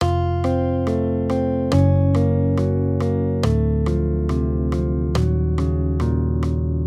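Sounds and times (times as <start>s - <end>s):
guitar accompaniment playing major triads: 0.0s - 6.8s.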